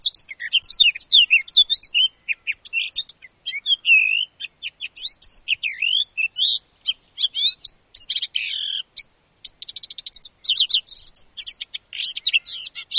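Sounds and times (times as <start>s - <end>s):
Eurasian blackcap song with chattering, warbling, scratchy buzzes and whistled slurs: 0.0s - 12.9s.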